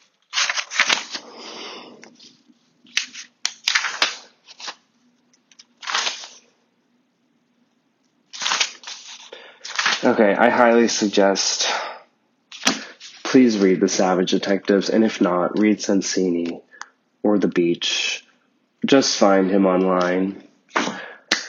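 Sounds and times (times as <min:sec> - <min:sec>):
paper pages of a book flipping: 0:00.0 - 0:01.4, 0:02.0 - 0:06.5, 0:08.3 - 0:10.2
faint low hum: 0:00.0 - 0:21.2
speech: 0:10.1 - 0:11.8, 0:13.3 - 0:16.7, 0:17.3 - 0:18.2, 0:18.9 - 0:20.5.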